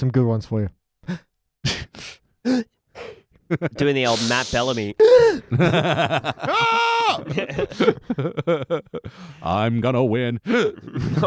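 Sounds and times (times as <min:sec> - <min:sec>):
speech: 0:00.0 - 0:01.3, 0:02.4 - 0:02.7, 0:03.5 - 0:11.2
quick sharp breaths drawn in with a voiced catch like a gasp: 0:04.0 - 0:05.4.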